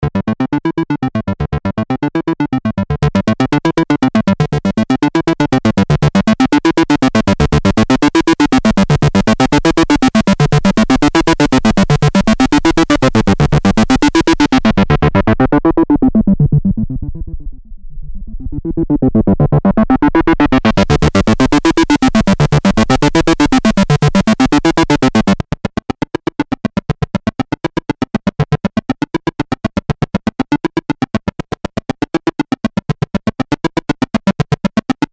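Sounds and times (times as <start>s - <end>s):
analog synthesizer: 0.4s - 35.1s.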